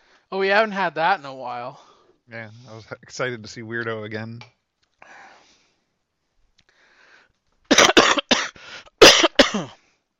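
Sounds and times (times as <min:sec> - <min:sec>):
speech: 0:00.3 - 0:05.2, 0:09.5 - 0:09.8
person coughing wetly after choking on soda: 0:07.7 - 0:09.8.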